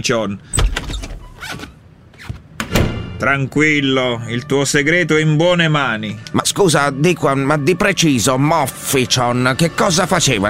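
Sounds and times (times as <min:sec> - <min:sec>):
speech: 0:00.0 - 0:00.8, 0:03.2 - 0:10.4
door being opened: 0:00.5 - 0:03.2
loud thump: 0:00.6 - 0:01.4, 0:02.6 - 0:03.2.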